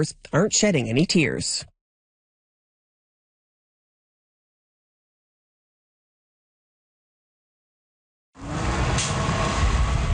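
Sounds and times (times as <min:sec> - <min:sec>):
speech: 0:00.0 - 0:01.7
double-decker bus engine drone: 0:08.4 - 0:10.1.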